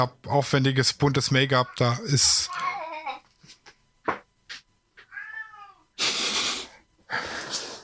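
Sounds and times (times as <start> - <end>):
speech: 0.0 - 2.8
cat meowing with drawn-out wavering cries: 5.1 - 5.8
loud breathy hissing bursts of noise: 6.0 - 7.8.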